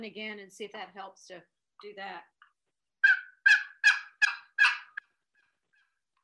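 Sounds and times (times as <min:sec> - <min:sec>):
speech: 0:00.0 - 0:02.4
turkey hunting call raspy yelps: 0:03.0 - 0:05.0.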